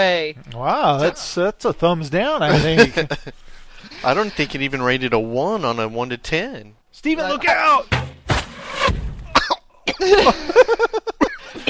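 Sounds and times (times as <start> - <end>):
speech: 0.0 - 8.2, 10.0 - 11.0
laughter: 2.4 - 4.8, 9.9 - 11.6
person coughing in a harsh hoarse fit: 2.5 - 3.0, 9.3 - 10.6, 11.2 - 11.6.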